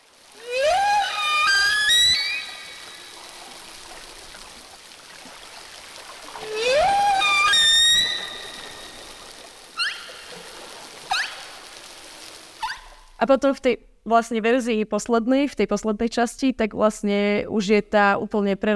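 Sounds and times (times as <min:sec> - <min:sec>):
whale song: 0:00.0 - 0:13.1
faint watery hiss: 0:00.0 - 0:13.2
whale rising whistle-like calls rich in overtones: 0:00.3 - 0:04.2, 0:06.2 - 0:13.1
speech: 0:13.2 - 0:18.7.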